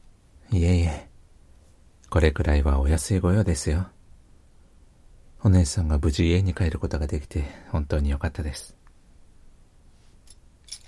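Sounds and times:
speech: 0:00.5 - 0:01.1, 0:02.1 - 0:04.0, 0:05.4 - 0:08.8
keys jingling as they are handed over: 0:10.3 - 0:10.8.

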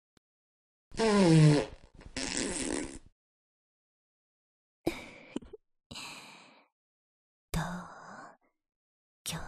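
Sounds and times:
loud buzzing and sputtering farts: 0:01.0 - 0:03.1.

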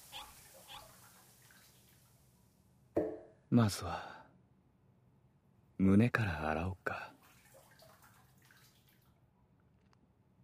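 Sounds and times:
shower water running: 0:00.0 - 0:02.6, 0:07.2 - 0:09.1
sharp knock: 0:03.0 - 0:03.3
speech: 0:03.5 - 0:04.1, 0:05.8 - 0:07.1.

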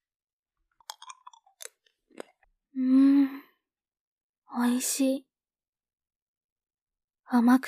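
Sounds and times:
sweet hard candy crunched and chewed: 0:00.8 - 0:02.4
speech: 0:04.6 - 0:05.3, 0:07.3 - 0:07.6.

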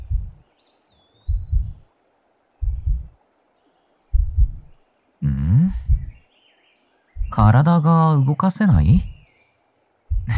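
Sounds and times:
heartbeat thumps heard with an ear pressed against a chest: 0:00.0 - 0:00.4, 0:01.3 - 0:01.9, 0:02.6 - 0:03.2, 0:04.1 - 0:04.7, 0:05.6 - 0:06.2, 0:07.2 - 0:07.6, 0:10.1 - 0:10.3
speech: 0:07.4 - 0:09.1.

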